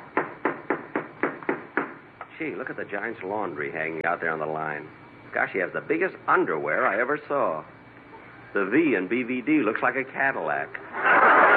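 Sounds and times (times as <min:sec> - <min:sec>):
knocking on a house door: 0:00.1 - 0:02.0
speech: 0:02.4 - 0:07.8, 0:08.5 - 0:11.5.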